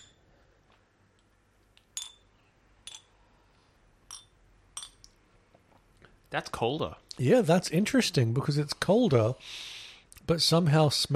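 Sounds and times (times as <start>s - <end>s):
faint hiss: 0.0s - 11.1s
stainless steel drinking glasses clinking in a toast: 2.0s - 3.2s, 4.1s - 5.1s
speech: 6.3s - 11.1s.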